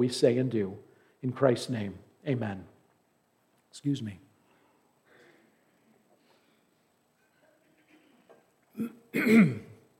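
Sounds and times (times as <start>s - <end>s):
speech: 0.0s - 2.7s, 3.7s - 4.2s, 8.8s - 9.7s
throat clearing: 8.7s - 9.8s.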